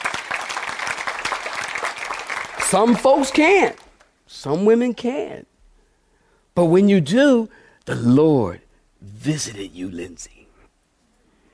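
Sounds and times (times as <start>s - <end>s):
congregation clapping hands: 0.0s - 4.1s
speech: 2.7s - 5.5s, 6.6s - 10.4s.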